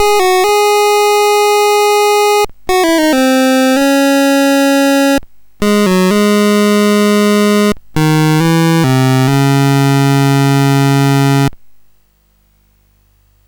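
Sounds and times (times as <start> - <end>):
MOS 6581 SID chip game music in BASIC: 0.0 - 11.6.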